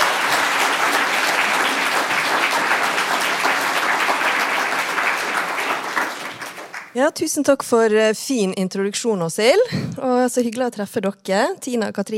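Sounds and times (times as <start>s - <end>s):
audience applause: 0.0s - 7.0s
speech: 7.0s - 12.1s.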